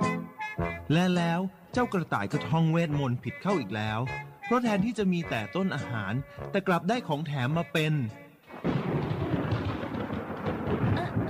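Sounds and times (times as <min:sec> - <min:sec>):
speech: 0:00.9 - 0:08.6
thunder crack and rumble from a lightning strike: 0:08.5 - 0:11.2.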